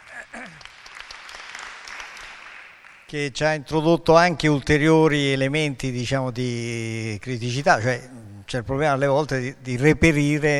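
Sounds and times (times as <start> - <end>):
audience applause at a talk on sourcing equipment and technology: 0.0 - 3.1
speech: 3.1 - 10.5.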